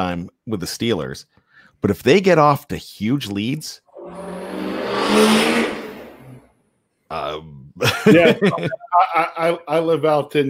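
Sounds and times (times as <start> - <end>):
speech: 0.0 - 4.4, 5.1 - 5.7, 7.1 - 10.4
loud truck roaring down a country road: 3.9 - 6.5
laughter: 7.8 - 9.7.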